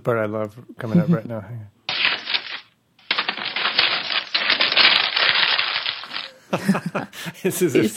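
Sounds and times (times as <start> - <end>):
speech: 0.0 - 1.8, 6.5 - 7.9
paper being crumpled up and tossed: 1.9 - 6.4
laughter: 6.4 - 7.9.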